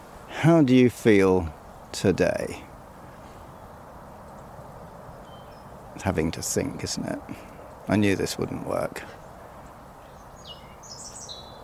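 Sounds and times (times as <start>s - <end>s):
speech: 0.4s - 2.7s, 6.0s - 9.2s
wild European robin singing in spring in the New Forest, UK: 5.1s - 5.8s, 10.0s - 11.6s.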